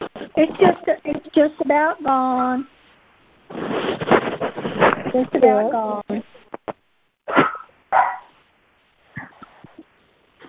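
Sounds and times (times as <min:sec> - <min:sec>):
speech: 0:00.4 - 0:02.8, 0:03.5 - 0:06.0
dog barking at a cornered critter: 0:07.3 - 0:08.4.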